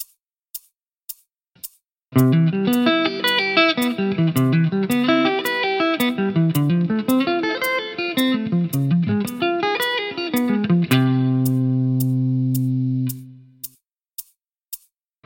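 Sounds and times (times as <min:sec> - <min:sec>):
guitar sweep picking over a ii-V-I progression: 0:02.2 - 0:13.5.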